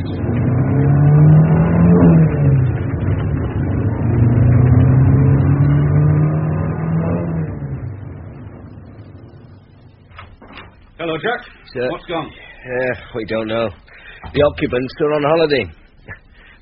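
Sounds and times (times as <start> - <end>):
car engine revving hard as the car pulls away: 0.0 - 11.0
speech: 11.3 - 16.6.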